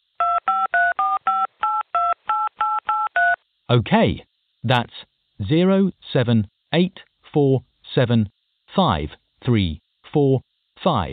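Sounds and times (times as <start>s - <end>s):
dual-tone telephone keypad beeps entering a phone number: 0.2s - 3.4s
speech: 3.7s - 11.1s.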